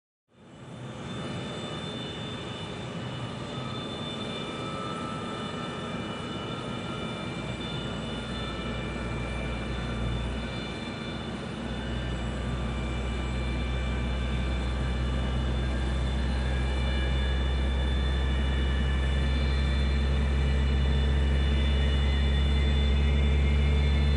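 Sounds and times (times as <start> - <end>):
airliner on standby propeller noise: 0.5 - 24.1.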